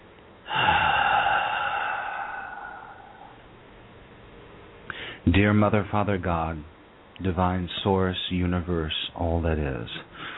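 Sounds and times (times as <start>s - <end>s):
long deep breath drawn in sharply: 0.5s - 3.5s
speech: 5.3s - 10.1s.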